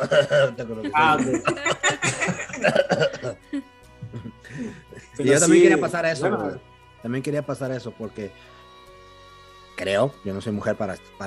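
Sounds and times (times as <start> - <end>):
speech: 0.0 - 3.1, 5.2 - 8.6, 9.8 - 11.2
loud coughing bursts: 0.0 - 3.4
chuckles and voiced breaths: 0.0 - 5.1.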